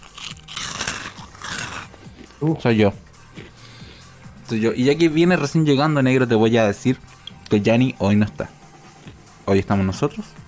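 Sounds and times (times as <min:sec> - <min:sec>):
person chewing food with crunchy wet bites: 0:00.0 - 0:02.4, 0:03.1 - 0:04.2, 0:08.8 - 0:09.3
speech: 0:02.4 - 0:03.1, 0:04.5 - 0:08.6, 0:09.5 - 0:10.4.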